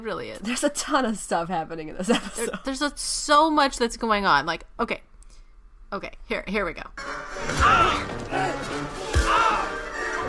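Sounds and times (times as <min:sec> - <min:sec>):
speech: 0:00.0 - 0:05.1, 0:05.9 - 0:08.6
heavy punches landing: 0:07.5 - 0:09.6.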